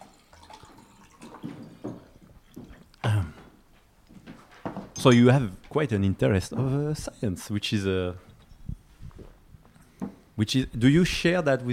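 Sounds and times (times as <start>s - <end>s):
water dripping and splashing: 0.0s - 2.4s
speech: 5.0s - 8.3s, 10.4s - 11.7s.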